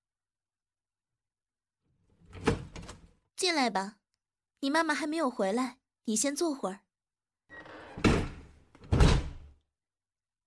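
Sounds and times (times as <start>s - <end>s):
door swinging shut with a solid thunk: 2.2s - 3.1s, 7.5s - 9.6s
speech: 3.4s - 4.0s, 4.6s - 6.8s.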